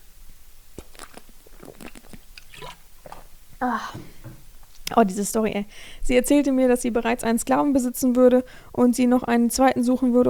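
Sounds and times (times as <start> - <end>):
lip smacks: 0.7 - 3.4
person sipping and gulping water: 0.7 - 4.8
speech: 3.6 - 4.2, 4.9 - 10.2.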